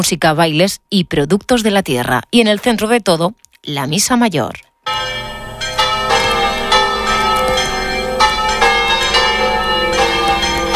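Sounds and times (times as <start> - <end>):
speech: 0.0 - 5.2
sanctuary church bells pealing for High Mass in Hoz de Marrón: 4.8 - 10.7.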